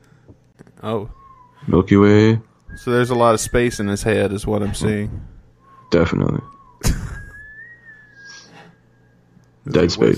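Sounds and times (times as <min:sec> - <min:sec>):
speech: 0:00.8 - 0:05.3, 0:05.9 - 0:06.4, 0:09.7 - 0:10.1
whistled note in a pop song: 0:01.1 - 0:01.7, 0:02.7 - 0:05.0, 0:05.6 - 0:09.4.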